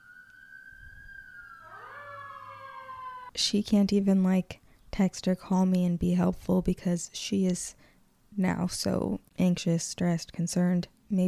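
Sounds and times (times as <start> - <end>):
emergency vehicle sirens wailing: 0.0 - 3.3
speech: 3.4 - 11.2.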